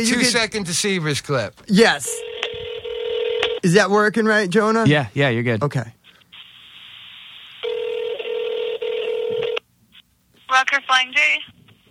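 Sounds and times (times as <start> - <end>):
speech: 0.0 - 2.3, 3.6 - 6.0, 10.7 - 11.6
telephone ringing tone on a call to a truck stop in Montana: 2.1 - 3.6, 7.6 - 9.6
telephone line hiss on a call to a truck stop in Montana: 6.4 - 9.6.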